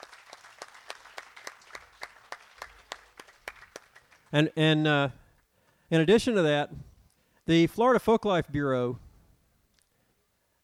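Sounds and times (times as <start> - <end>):
audience applause: 0.0 - 4.4
speech: 4.3 - 5.2, 5.9 - 6.9, 7.5 - 9.0.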